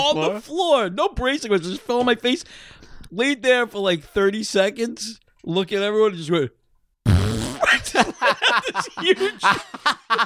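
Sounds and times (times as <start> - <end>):
speech: 0.0 - 6.6, 7.8 - 10.2
mouth imitation of a long fart: 7.0 - 7.9
laughter: 7.6 - 10.2.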